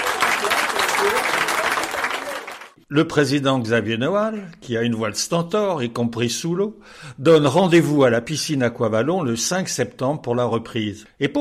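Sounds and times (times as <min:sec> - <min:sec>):
crowd clapping: 0:00.0 - 0:02.8
speech: 0:02.9 - 0:11.3.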